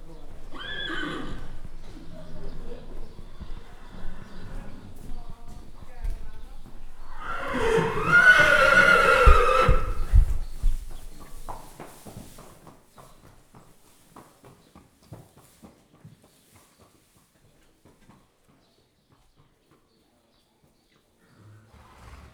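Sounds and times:
horses neighing while being led out of a stable: 0.0s - 5.1s, 7.0s - 10.5s, 21.3s - 22.3s.

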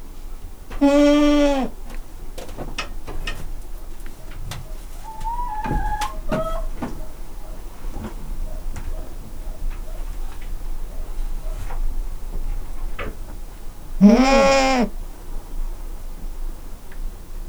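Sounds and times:
hen in a farmyard: 0.7s - 2.0s, 3.9s - 11.9s, 13.9s - 15.1s
domestic goat in a farmyard: 0.7s - 11.9s, 12.9s - 15.0s.

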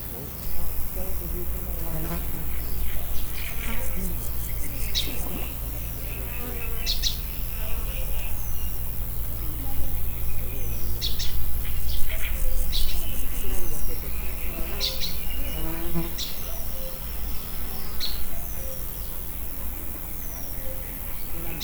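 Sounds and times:
insects in nature: 0.0s - 21.6s
air traffic in nature: 0.4s - 14.6s.

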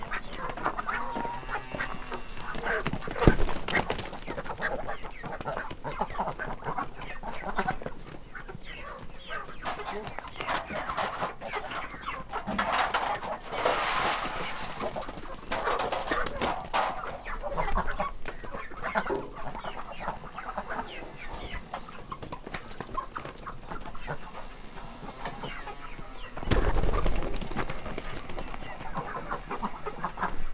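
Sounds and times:
poultry pecking from a metal tray in a farmyard: 0.0s - 30.4s
pigeon flying up in a farmyard: 9.7s - 17.9s, 26.4s - 29.5s.

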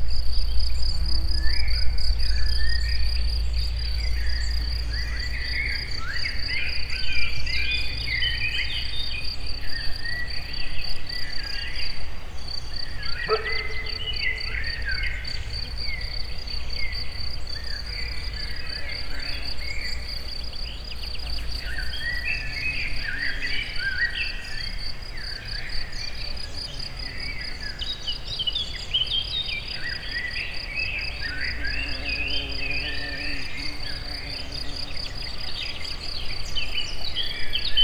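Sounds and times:
insects in nature: 0.0s - 37.8s
dog in nature: 13.2s - 14.4s.

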